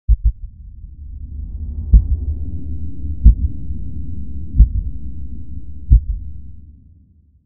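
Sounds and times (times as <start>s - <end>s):
heartbeat pulse: 0.1s - 0.6s, 1.9s - 2.3s, 3.2s - 3.6s, 4.5s - 5.0s, 5.9s - 6.3s
deep underwater sound effect: 0.1s - 7.3s.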